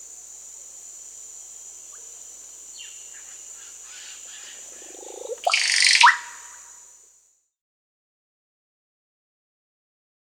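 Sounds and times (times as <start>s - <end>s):
steady high hiss: 0.0s - 7.4s
Russet-backed oropendola gurgling song in South America: 4.8s - 6.7s.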